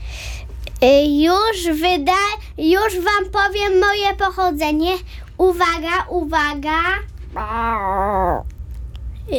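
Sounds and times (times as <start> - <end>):
speech: 0.8 - 8.5
person's voice imitating a jaguar yowl: 7.4 - 8.5.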